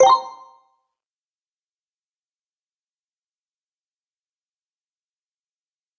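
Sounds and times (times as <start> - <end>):
confirmation sound: 0.0 - 0.5.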